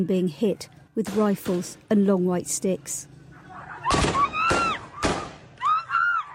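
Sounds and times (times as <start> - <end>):
speech: 0.0 - 3.2
high-pitched screaming voices: 3.4 - 6.3
people shouting: 3.4 - 6.3
gunshots fired to disperse a crowd: 3.8 - 5.5.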